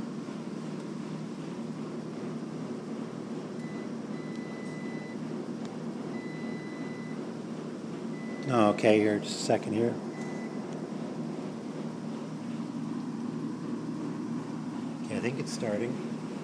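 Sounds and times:
digital washing machines running in a laundromat: 0.0 - 16.4
speech: 8.5 - 10.1, 15.5 - 16.2.

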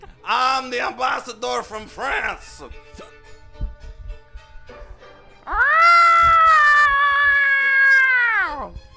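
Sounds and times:
speech: 0.3 - 3.2
person imitating a long drawn-out cat meow: 5.5 - 8.7.

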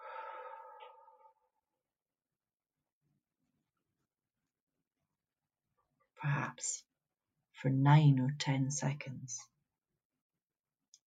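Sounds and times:
long slow exhale: 0.0 - 1.4
speech: 6.2 - 6.9, 7.6 - 9.5.

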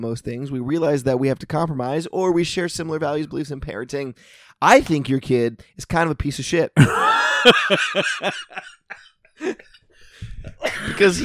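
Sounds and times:
speech: 0.0 - 9.8, 10.4 - 11.2
person coughing hard: 6.8 - 8.7
laughter: 6.8 - 9.7, 10.4 - 11.2.

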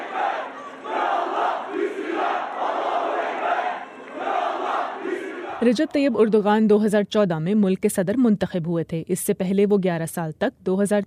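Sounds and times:
supporters chanting slogans in unison at a polling station in Istanbul: 0.0 - 5.8
speech: 5.6 - 11.0.

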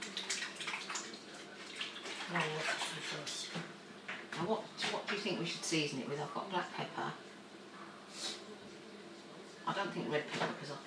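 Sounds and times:
hands being washed under running tap water: 0.0 - 3.5
speech: 2.3 - 3.6, 4.4 - 7.3, 9.7 - 10.8.

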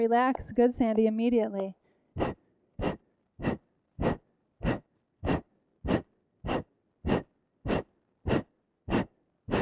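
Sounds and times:
speech: 0.0 - 2.4
forceful exhaling breaths during a breathing exercise: 2.1 - 9.6.

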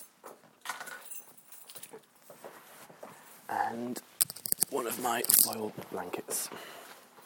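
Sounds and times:
speech: 3.5 - 4.1, 4.7 - 6.8
bunch of keys jangling: 4.2 - 5.6.

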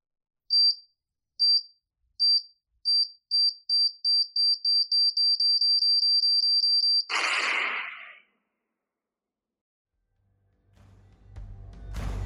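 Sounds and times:
bomb beeping: 1.4 - 7.1
harsh noisy burst: 7.1 - 8.2.

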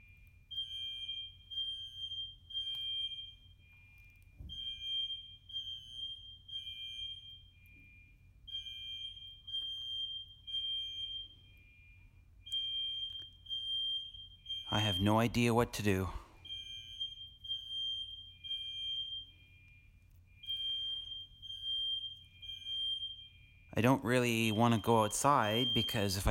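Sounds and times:
fire alarm blaring in shrill high-pitched bursts: 0.0 - 26.3
speech: 14.9 - 16.2, 23.8 - 26.3.

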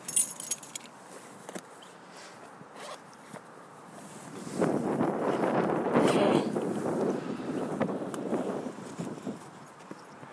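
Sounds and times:
keys jingling: 0.0 - 0.9
gusty wind in freezing snowy weather: 3.7 - 10.3.

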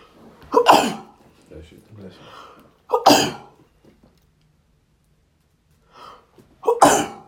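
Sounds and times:
person sneezing: 0.5 - 1.2, 2.9 - 3.6, 6.6 - 7.2
faint breathing: 2.1 - 2.8, 5.8 - 6.5.

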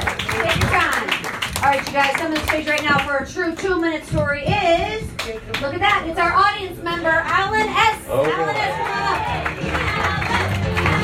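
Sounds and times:
live audience applauding: 0.0 - 2.9, 8.1 - 11.0
speech: 2.0 - 9.8
live audience cheering: 8.1 - 11.0.

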